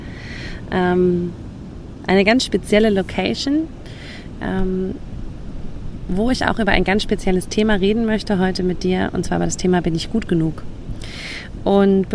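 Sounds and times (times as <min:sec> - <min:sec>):
ocean surf: 0:00.0 - 0:12.1
speech: 0:00.7 - 0:01.4, 0:02.1 - 0:03.8, 0:04.4 - 0:05.1, 0:06.1 - 0:12.1.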